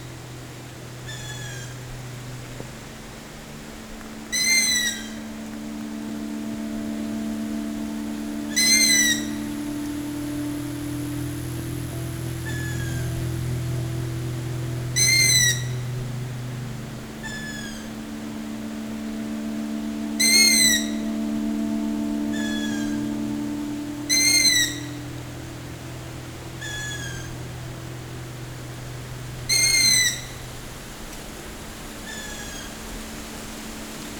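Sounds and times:
steady low drone: 0.0s - 34.1s
night birds calling in a forest: 4.3s - 31.1s.

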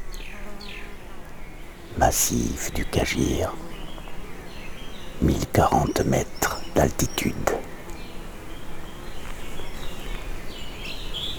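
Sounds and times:
birds chirping and warbling in a mountain forest: 1.9s - 8.2s
speech: 2.0s - 3.7s, 5.2s - 7.6s.

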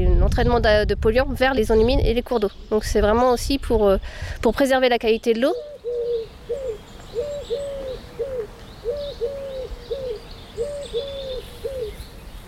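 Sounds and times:
speech: 0.3s - 5.7s
faint birdsong: 1.7s - 12.4s
turtle dove cooing: 5.5s - 12.2s.

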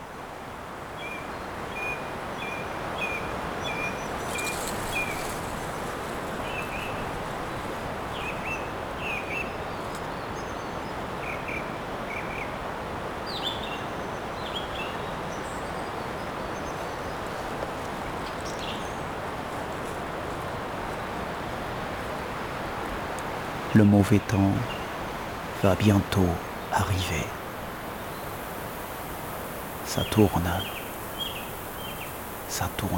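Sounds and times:
wind roaring through forest trees as bad weather approaches: 0.0s - 32.9s
small birds chirping and trilling in a forest: 2.4s - 11.6s, 13.3s - 32.9s
speech: 23.8s - 24.8s, 25.6s - 27.4s, 30.0s - 30.8s, 32.6s - 32.9s.

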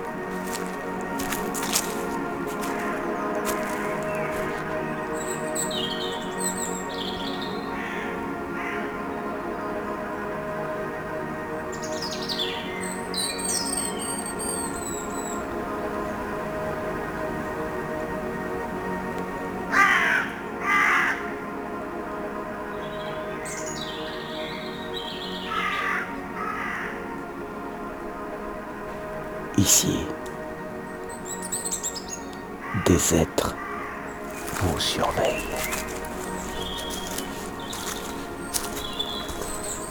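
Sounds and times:
steady droning background: 0.0s - 29.5s, 33.6s - 39.8s
birds chirping and calling among rocks and trees: 0.4s - 7.6s, 31.1s - 39.8s
harsh caws: 19.7s - 21.3s, 25.5s - 27.0s, 32.7s - 39.8s
speech: 29.6s - 30.1s, 32.9s - 33.3s, 34.8s - 35.8s.

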